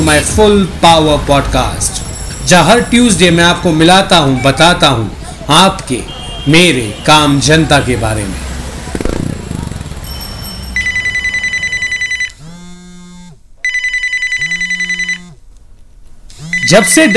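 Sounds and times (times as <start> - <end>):
speech: 0.1 - 9.1, 16.7 - 17.1
low rumbling noise: 8.4 - 12.0
telephone ringing with trilling bell tones: 10.1 - 12.4, 13.6 - 15.4, 16.5 - 17.1.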